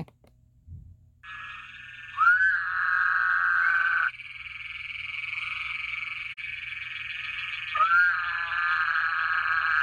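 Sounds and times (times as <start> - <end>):
Woodhouse's toad calling: 1.3 - 9.8.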